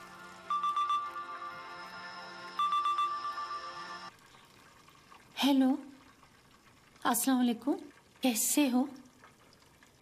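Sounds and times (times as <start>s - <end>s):
mobile phone ringtone with bright electronic tones: 0.4s - 4.1s
speech: 5.4s - 5.9s, 7.0s - 9.0s.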